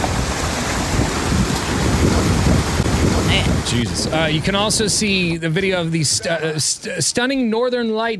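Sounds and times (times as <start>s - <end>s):
sharks thrashing and splashing in still ocean water: 0.0s - 6.1s
speech: 3.7s - 8.1s.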